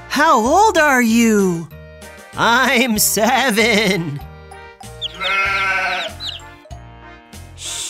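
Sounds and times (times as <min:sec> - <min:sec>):
speech: 0:00.2 - 0:01.7, 0:02.4 - 0:04.3
goat bleating: 0:05.0 - 0:06.5.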